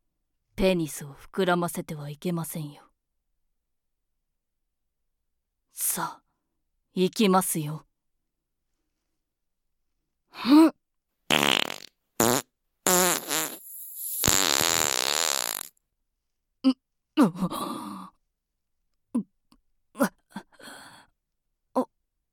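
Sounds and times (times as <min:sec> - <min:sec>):
speech: 0:00.6 - 0:02.9, 0:05.8 - 0:06.2, 0:07.0 - 0:07.9, 0:10.4 - 0:10.8, 0:16.6 - 0:17.7
farts: 0:11.3 - 0:15.8.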